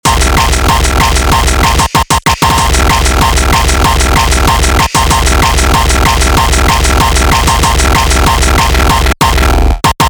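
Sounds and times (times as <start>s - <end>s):
hardcore drum beat: 0.0s - 10.0s.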